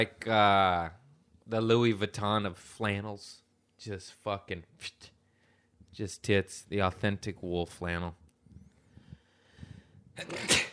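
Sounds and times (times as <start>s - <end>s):
speech: 0.0s - 5.2s, 6.0s - 8.2s, 10.2s - 10.7s
person sneezing with spray of spit: 10.2s - 10.7s.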